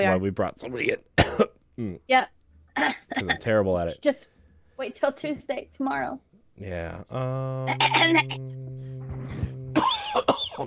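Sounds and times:
speech: 0:00.0 - 0:08.9, 0:10.1 - 0:10.6
man coughing from choking on orange soda: 0:01.2 - 0:01.6, 0:09.8 - 0:10.6
low hum: 0:07.0 - 0:10.3.

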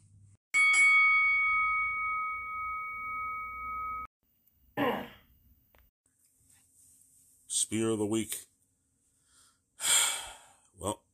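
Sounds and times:
single final bell struck with a clear metallic tone: 0:00.6 - 0:04.1
rough throat clearing: 0:04.8 - 0:05.2
speech: 0:07.6 - 0:08.5.

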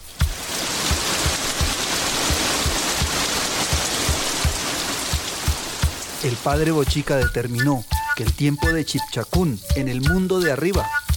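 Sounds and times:
large waterfall roaring: 0:00.1 - 0:07.3
speech: 0:06.2 - 0:11.1.

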